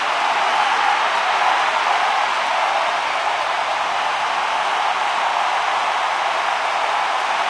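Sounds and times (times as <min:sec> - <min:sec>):
crowd ambience: 0:00.0 - 0:07.4.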